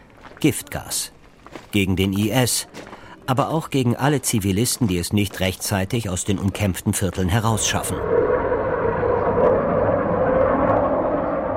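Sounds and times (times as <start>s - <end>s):
speech: 0.4s - 8.4s
fighter jet roaring overhead: 7.4s - 11.5s.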